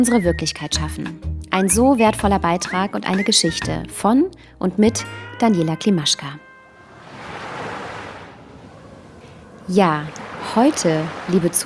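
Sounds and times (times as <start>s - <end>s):
speech: 0.0s - 6.5s, 9.7s - 11.6s
ocean waves at sea on a windy day: 6.3s - 11.6s
wind at sea on a windy day: 6.4s - 11.6s.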